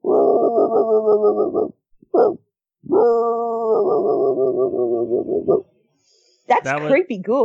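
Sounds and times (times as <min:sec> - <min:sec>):
person imitating distant dog barking: 0:00.0 - 0:05.6
speech: 0:06.6 - 0:07.4.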